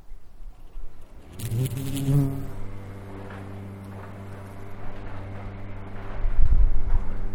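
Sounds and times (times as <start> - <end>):
soft outdoor ambience: 0.0 - 7.3
bee buzzing among mallow flowers: 1.0 - 6.0.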